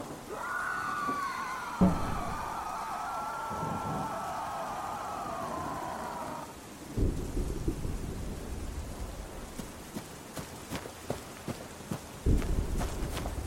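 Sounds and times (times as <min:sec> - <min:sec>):
heavy low thunder cracks in the woods: 0:00.0 - 0:09.2
rain pattering in the woods: 0:00.0 - 0:13.4
sharp water drips or splashes: 0:00.0 - 0:13.4.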